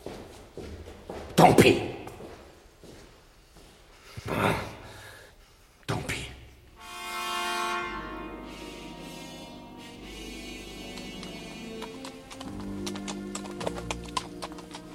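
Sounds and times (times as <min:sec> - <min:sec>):
horse hooves clip-clopping along a path among rocks: 0:00.0 - 0:01.4, 0:10.4 - 0:14.9
speech: 0:01.4 - 0:02.0
sustained humming tonal background: 0:06.8 - 0:14.9.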